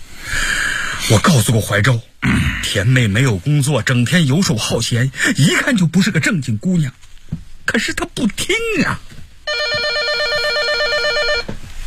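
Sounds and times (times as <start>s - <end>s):
speech: 1.1s - 9.1s
electronic telephone ringing with a warbling tone: 9.5s - 11.5s.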